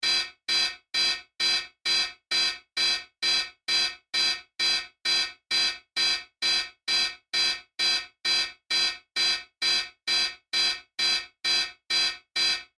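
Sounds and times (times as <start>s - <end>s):
ground radar alarm system signal: 0.0s - 12.7s.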